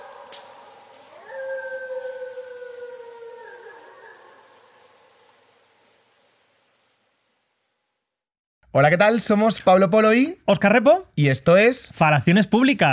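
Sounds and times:
distant pack of canines howling: 0.0 - 6.0
speech: 8.8 - 12.9.

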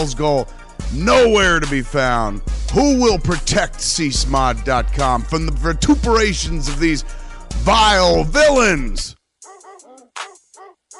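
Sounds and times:
speech: 0.0 - 9.2
dog barking: 9.4 - 10.9.

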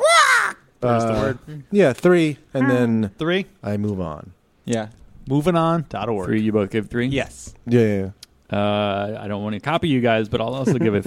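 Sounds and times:
person vocally imitating a pterodactyl squawk: 0.0 - 0.6
speech: 0.8 - 11.0.

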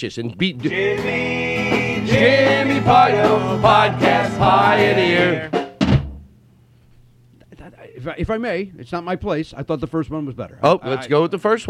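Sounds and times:
speech: 0.0 - 5.6, 7.7 - 11.6
loud low drum thump: 5.5 - 6.3.

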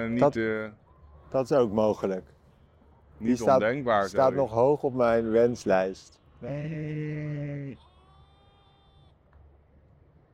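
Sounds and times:
speech: 0.0 - 2.4, 3.2 - 7.9
faint outdoor ambience: 0.0 - 10.3
sheep bleating: 6.4 - 9.2.

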